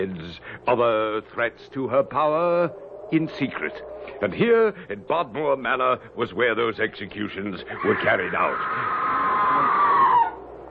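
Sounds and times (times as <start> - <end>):
speech: 0.0 - 9.1
distant human scream: 7.7 - 10.5.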